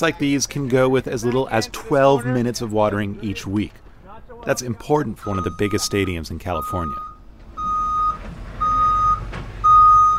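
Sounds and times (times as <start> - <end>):
speech: 0.0 - 3.8, 4.4 - 7.1
truck low engine rumble: 0.0 - 10.1
truck delivering fan palms to a stadium in California reversing alarm beeps: 5.2 - 10.1.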